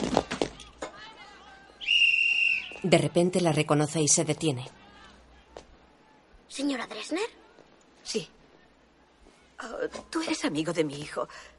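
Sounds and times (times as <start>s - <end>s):
boy blowing a shrill whistle: 1.8s - 2.8s
speech: 2.8s - 4.8s, 6.6s - 7.4s, 8.1s - 8.4s, 9.6s - 11.5s.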